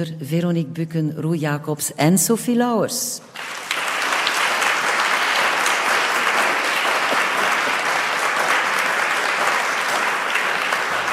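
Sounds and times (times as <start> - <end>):
speech: 0.0 - 3.8
audience applause in a large concert hall: 3.4 - 11.1.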